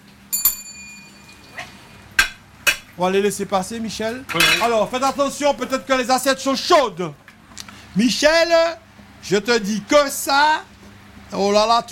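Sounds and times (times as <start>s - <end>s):
bright bell ringing in a kitchen as food is ready for service: 0.3s - 1.5s
speech: 3.0s - 7.2s, 8.0s - 10.7s, 11.3s - 11.8s.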